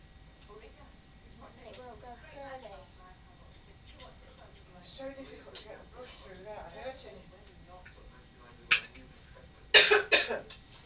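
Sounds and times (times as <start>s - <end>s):
person coughing: 9.8s - 10.5s.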